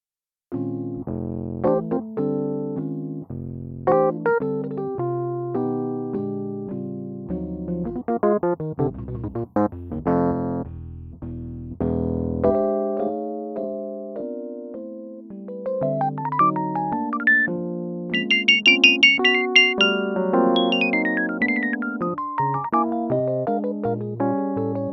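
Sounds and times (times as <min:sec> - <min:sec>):
Yamaha Rhodes stage piano: 0:00.5 - 0:10.7, 0:11.7 - 0:24.9.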